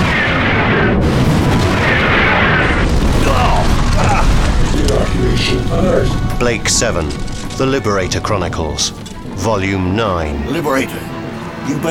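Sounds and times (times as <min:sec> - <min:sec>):
missiles launching and exploding in a sci-fi space battle: 0:00.0 - 0:09.4
speech: 0:06.4 - 0:11.1, 0:11.7 - 0:11.8.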